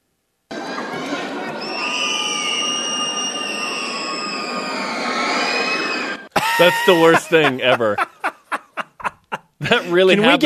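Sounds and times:
steady roar of a large basketball arena crowd: 0.5s - 8.0s
fan's shrill high-pitched scream during a basketball free throw: 0.6s - 7.6s
laughter: 6.3s - 10.4s
speech: 6.6s - 8.1s, 9.7s - 10.4s.

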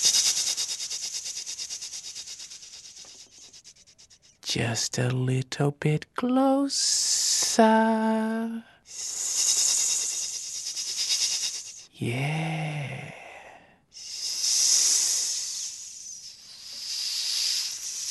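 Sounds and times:
person imitating a snake hissing: 0.0s - 4.4s, 8.9s - 18.0s
speech: 4.6s - 7.0s, 7.6s - 9.2s, 12.0s - 13.2s.

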